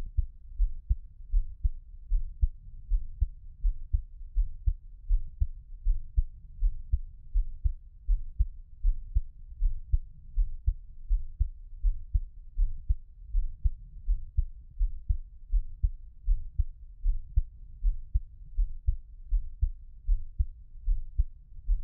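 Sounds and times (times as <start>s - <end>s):
muffled heartbeat: 0.0s - 21.8s.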